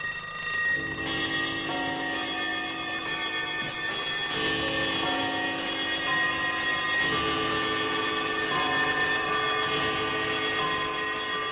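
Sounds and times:
chorus of alarm clocks and bells ringing at the beginning of a song: 0.0 - 11.5.

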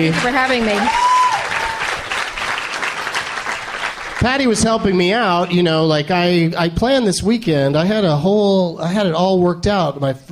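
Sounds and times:
speech: 0.0 - 1.0, 4.2 - 10.3
live audience applause: 0.0 - 5.8.

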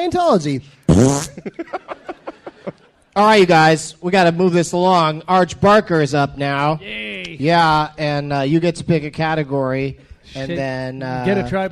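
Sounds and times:
speech: 0.0 - 2.0, 2.6 - 11.7
loud buzzy fart sound effect: 0.9 - 1.4
laughter: 1.2 - 3.1.

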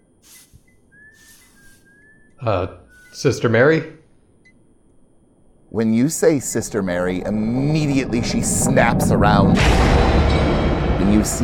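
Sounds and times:
broom sweeping the floor: 0.0 - 2.0, 2.9 - 3.3
broad swishing noises: 0.2 - 1.9
person whistling a soft wandering tune: 0.6 - 2.3, 2.9 - 3.2
speech: 2.4 - 4.0, 5.7 - 11.4.

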